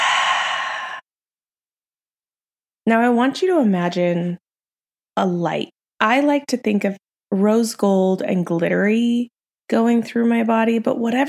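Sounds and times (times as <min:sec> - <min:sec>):
deep exhale during a breathing exercise: 0:00.0 - 0:01.1
speech: 0:02.9 - 0:04.4, 0:05.2 - 0:11.2.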